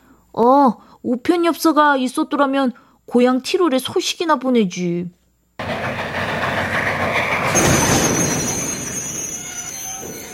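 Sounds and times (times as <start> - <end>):
speech: 0.4 - 5.2, 7.6 - 8.0
train rumbling and clattering: 5.6 - 10.3
train wheels letting out a long high metallic squeal: 6.1 - 10.3.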